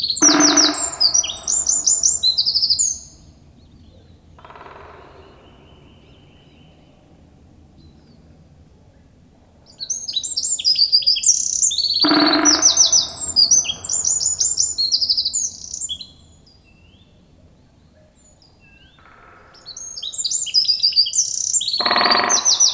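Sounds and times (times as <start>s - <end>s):
Eurasian wren Troglodytes troglodytes song with high trills and rattling phrases: 0.0s - 22.7s.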